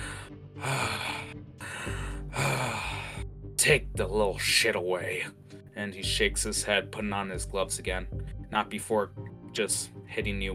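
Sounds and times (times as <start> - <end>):
heavy ragged breathing: 0.0 - 3.4
speech: 3.6 - 10.5.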